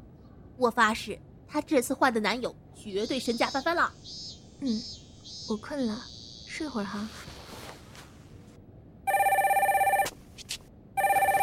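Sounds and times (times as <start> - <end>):
speech: 0.6 - 7.3
telephone ringing with a rapid warbling trill: 9.1 - 10.1, 11.0 - 11.4.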